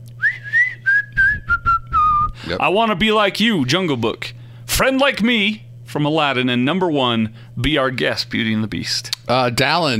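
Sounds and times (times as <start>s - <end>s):
faint low hum: 0.0s - 9.9s
whistled melody: 0.2s - 2.3s
speech: 2.5s - 9.9s.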